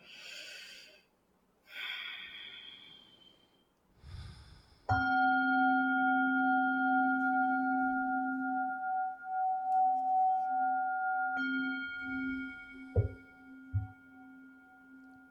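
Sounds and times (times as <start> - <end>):
slow deep breath during a yoga practice: 0.0 - 4.9
ringing chime: 4.9 - 15.2.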